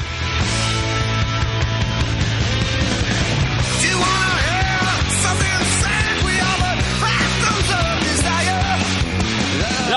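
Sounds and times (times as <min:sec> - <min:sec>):
loud rock song with dense band instrumentation: 0:00.0 - 0:09.9
sung vocal line over a rock song: 0:03.8 - 0:08.9.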